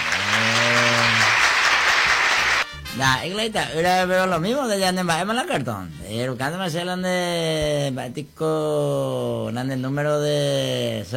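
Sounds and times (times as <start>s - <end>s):
applause: 0.0s - 2.8s
speech: 3.0s - 11.1s.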